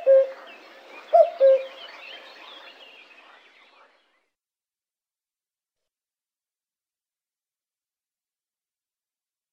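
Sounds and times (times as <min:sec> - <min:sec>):
common cuckoo calling cu-coo: 0:00.0 - 0:00.4, 0:01.1 - 0:01.8
faint birdsong: 0:00.0 - 0:04.4.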